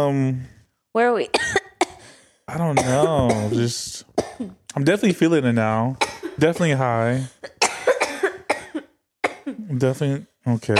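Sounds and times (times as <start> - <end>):
speech: 0.0 - 1.5, 2.5 - 7.6, 9.5 - 10.7
person coughing from smoking: 1.4 - 2.0, 2.6 - 4.6, 6.0 - 9.8.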